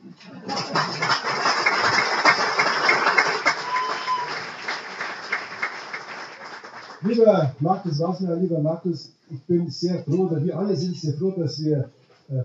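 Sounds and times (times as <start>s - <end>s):
audience applause: 0.4s - 7.2s
speech: 7.0s - 12.4s.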